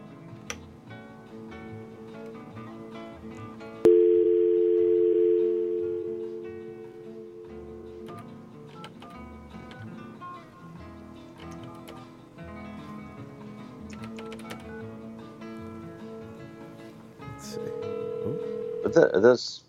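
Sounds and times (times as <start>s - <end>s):
telephone dial tone: 3.9s - 8.2s, 17.6s - 19.0s.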